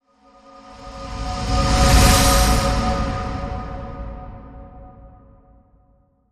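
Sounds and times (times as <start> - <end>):
celestial radiant whoosh: 0.8 - 4.7.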